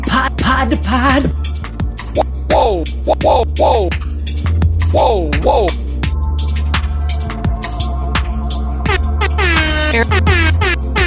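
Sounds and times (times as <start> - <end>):
thumping beat: 0.1 - 11.0
speech: 0.2 - 1.6, 2.2 - 4.0, 4.9 - 5.8, 9.9 - 10.4
loud brassy air horn blasts: 8.9 - 11.0.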